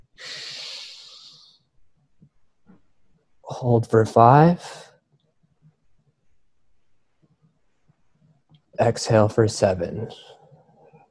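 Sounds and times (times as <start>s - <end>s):
long inhale through the nose in a breathing exercise: 0.2s - 1.6s
speech: 3.6s - 4.8s, 8.8s - 10.4s.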